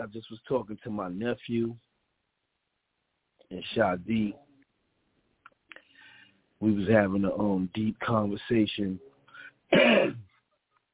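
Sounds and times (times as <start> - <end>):
speech: 0.0 - 1.9, 3.5 - 4.4, 6.6 - 9.1, 9.7 - 10.2
coughing: 9.7 - 10.4
harsh rasping throat clearing: 9.7 - 10.4.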